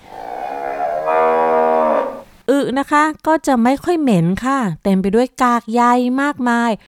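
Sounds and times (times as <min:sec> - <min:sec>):
cow mooing: 0:00.0 - 0:02.3
speech: 0:02.6 - 0:06.9.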